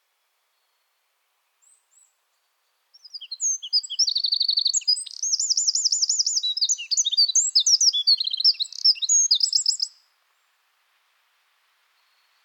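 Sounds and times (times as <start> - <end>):
Eurasian wren Troglodytes troglodytes song with rattling trills: 3.0 - 10.0.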